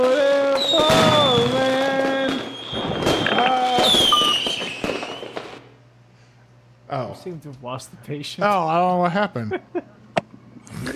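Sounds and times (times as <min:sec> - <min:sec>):
fireworks whistling: 0:00.0 - 0:05.8
speech: 0:06.9 - 0:10.0.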